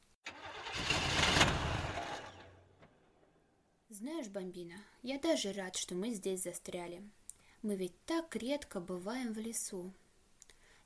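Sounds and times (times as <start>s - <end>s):
small car engine cranking, sputtering and stalling: 0.3s - 2.8s
speech: 4.0s - 10.0s.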